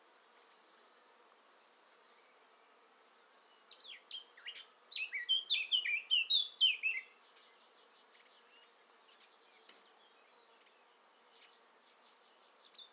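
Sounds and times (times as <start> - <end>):
Eurasian blackcap Sylvia atricapilla song: 3.6 - 12.9.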